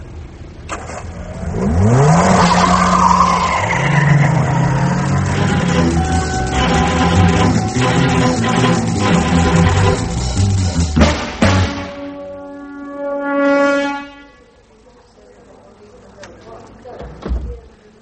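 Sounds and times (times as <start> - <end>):
road noise: 0.0 - 18.0
car tires squealing and skidding: 0.7 - 10.9
car engine revving hard: 0.8 - 11.6.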